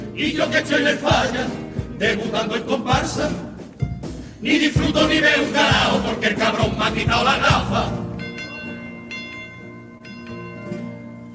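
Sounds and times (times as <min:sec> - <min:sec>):
speech: 0:00.2 - 0:03.5, 0:04.4 - 0:08.1
bell ringing with bright overtones: 0:07.9 - 0:11.3.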